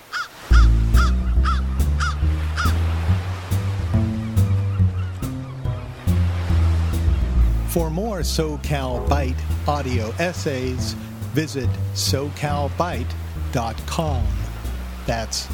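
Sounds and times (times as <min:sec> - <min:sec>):
crow cawing: 0:00.0 - 0:02.8
loud sustained low musical drone: 0:00.5 - 0:15.5
speech: 0:07.7 - 0:14.4, 0:15.1 - 0:15.5.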